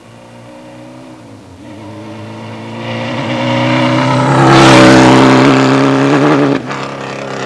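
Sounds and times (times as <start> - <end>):
motorcycle: 0.0 - 7.4.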